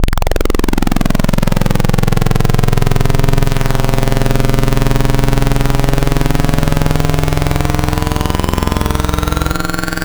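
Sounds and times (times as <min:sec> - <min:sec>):
chill FM saw synth: 0:00.2 - 0:10.0.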